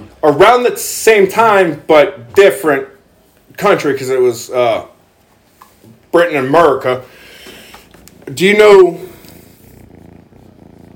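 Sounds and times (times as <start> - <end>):
speech: 0.2 - 2.9, 3.6 - 4.9, 6.1 - 7.2, 8.3 - 9.1
cat purring: 7.5 - 10.9.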